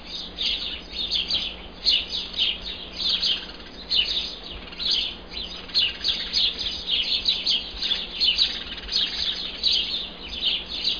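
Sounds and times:
birds: 0.0s - 10.9s.

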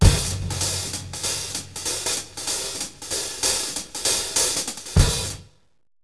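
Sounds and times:
hi-hat: 0.0s - 5.6s.

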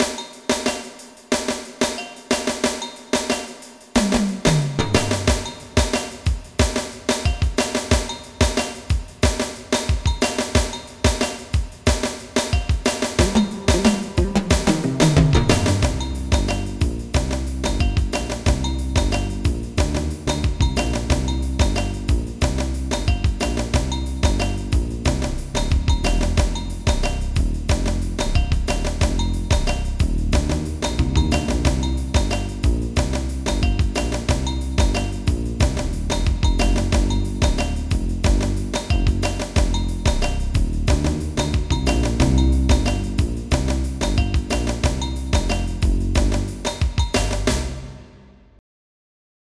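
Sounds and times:
drum: 0.0s - 48.2s.

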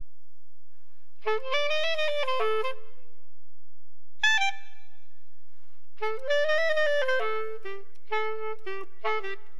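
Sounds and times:
clarinet playing acid jazz funk: 1.2s - 2.8s, 4.2s - 4.8s, 6.0s - 9.5s.

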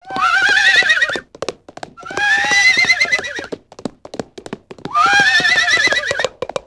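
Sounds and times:
pony whinnying with long quavering neighs: 0.0s - 1.3s, 2.0s - 3.5s, 4.9s - 6.4s
pony clip-clop hoofbeats: 0.0s - 6.6s.

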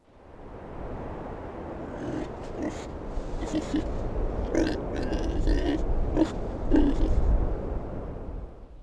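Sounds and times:
animal grunting: 1.9s - 3.9s, 4.5s - 7.2s.

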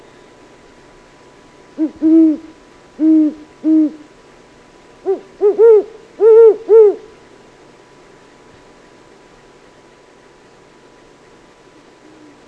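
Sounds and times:
speech: 1.8s - 4.0s
great horned owl hooting, higher-pitched voice: 1.8s - 4.1s, 5.0s - 7.2s
great horned owl hooting, lower-pitched voice: 1.8s - 4.1s, 5.0s - 7.2s, 11.8s - 12.4s.

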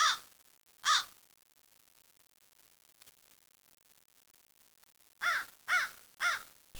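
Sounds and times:
bird uttering harsh nasal caws: 0.0s - 0.2s, 0.8s - 1.1s, 5.2s - 6.7s.

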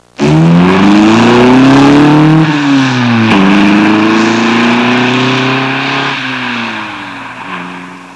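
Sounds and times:
sports car: 0.0s - 8.1s.

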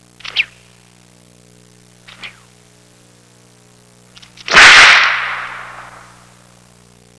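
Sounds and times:
whip crack: 0.2s - 0.6s, 2.1s - 2.4s, 4.3s - 6.2s.

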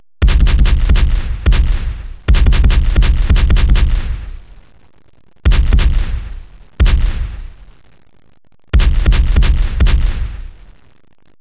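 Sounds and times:
cannon firing: 0.2s - 4.6s, 5.4s - 7.8s, 8.7s - 10.8s.

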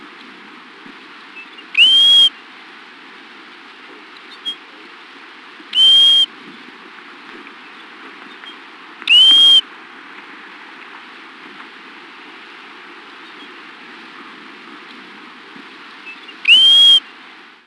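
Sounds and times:
background hiss: 0.0s - 17.6s
Pacific golden plover whistled call: 1.4s - 2.4s, 4.3s - 4.6s, 5.7s - 6.3s, 9.0s - 9.7s, 16.0s - 17.1s.

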